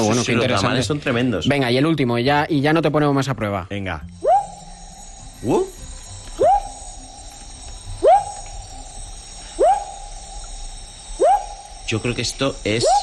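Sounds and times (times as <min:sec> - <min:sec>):
speech: 0:00.0 - 0:04.3, 0:05.4 - 0:05.8, 0:11.9 - 0:13.0
droning chorus of night sounds: 0:04.2 - 0:13.0
frog calling with rising whistle-like notes: 0:04.2 - 0:13.0.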